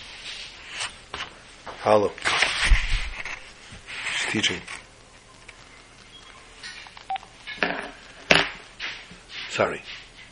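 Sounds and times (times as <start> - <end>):
rustling, crinkling handling noise: 0.0 - 10.2
speech: 1.8 - 2.3, 4.3 - 4.8, 9.6 - 10.0
electronic telephone keypad beep: 7.1 - 7.3.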